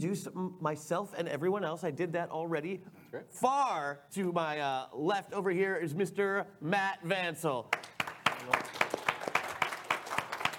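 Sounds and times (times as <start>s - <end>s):
speech: 0.0s - 8.8s
small audience clapping: 7.7s - 10.5s.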